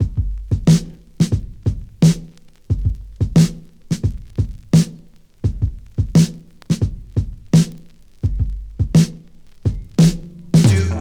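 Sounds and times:
87 bpm drum beat in F sharp key: 0.0s - 10.9s.

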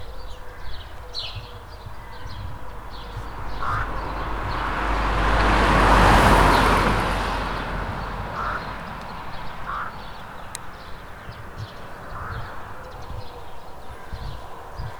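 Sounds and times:
car passing by in the countryside: 1.7s - 12.8s.

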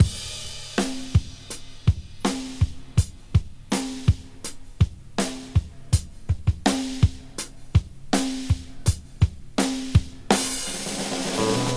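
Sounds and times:
drum loop in F: 0.0s - 11.7s.

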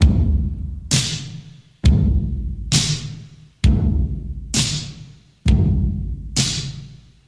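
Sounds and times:
kick drum tuned to the C note: 0.0s - 1.1s, 1.8s - 3.0s, 3.6s - 4.6s, 5.5s - 6.5s
old school drum loop: 0.0s - 7.2s.

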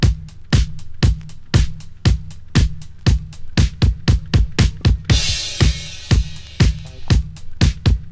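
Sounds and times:
drum beat in E: 0.0s - 8.0s.

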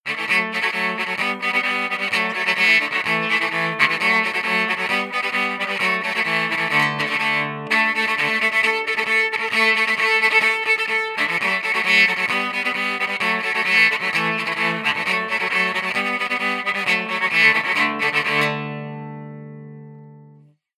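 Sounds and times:
electric cello playing a traditional sequence via DI: 0.1s - 20.6s.

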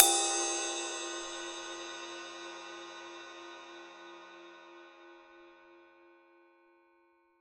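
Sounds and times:
ride cymbal sample tuned to the G note: 0.0s - 4.3s.

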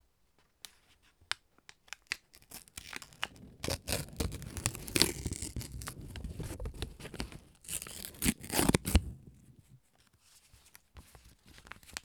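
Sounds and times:
paper ripping and tearing: 2.4s - 9.3s.

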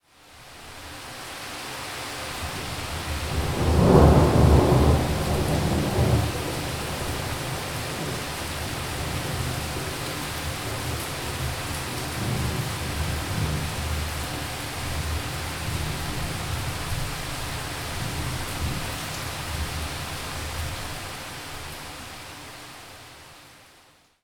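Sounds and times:
heavy rain: 0.0s - 24.1s
mountain thunder roll: 3.3s - 10.0s.

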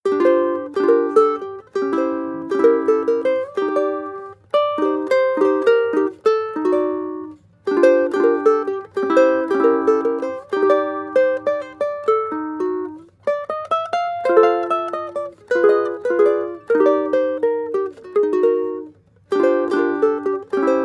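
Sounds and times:
jazz guitar sequence loop: 0.1s - 20.8s.

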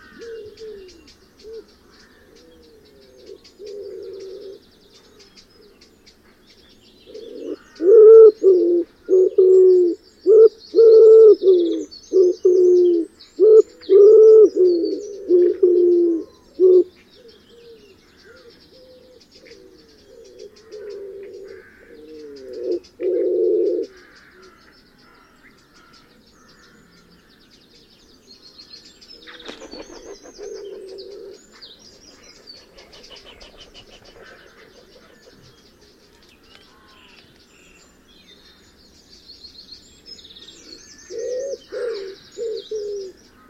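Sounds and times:
wood pigeons cooing: 0.0s - 4.6s, 7.1s - 24.5s, 29.2s - 35.6s, 41.1s - 43.4s.

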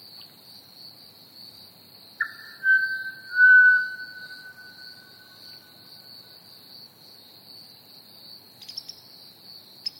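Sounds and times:
crickets chirping in a continuous high-pitched trill: 0.0s - 9.9s
pied butcherbird singing one long pure whistled note: 2.2s - 5.6s.

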